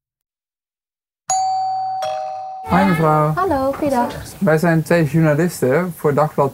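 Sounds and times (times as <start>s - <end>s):
two-tone doorbell chime: 1.3s - 3.0s
speech: 2.7s - 6.5s.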